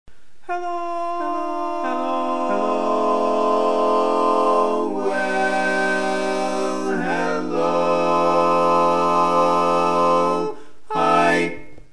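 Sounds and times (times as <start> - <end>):
bass with chorus: 0.5 - 11.9.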